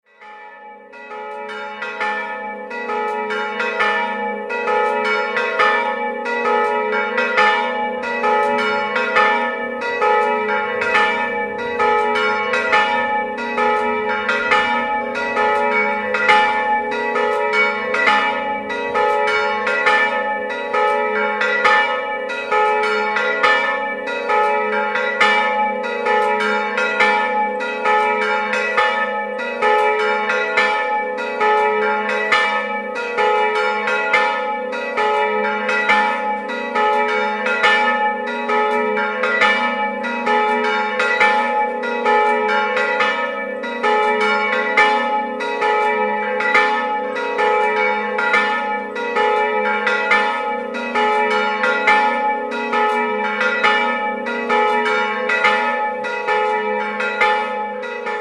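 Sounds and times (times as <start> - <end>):
bells in Glaunicco: 0.0 - 58.1.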